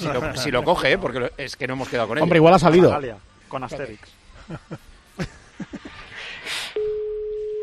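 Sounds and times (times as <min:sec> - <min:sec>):
speech: 0:00.0 - 0:05.4
person chuckling: 0:04.4 - 0:06.2
loud electronic telephone ringback tone: 0:06.8 - 0:07.6.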